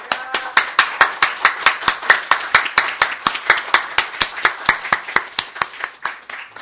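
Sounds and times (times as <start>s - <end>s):
audience applauding: 0.0s - 6.6s.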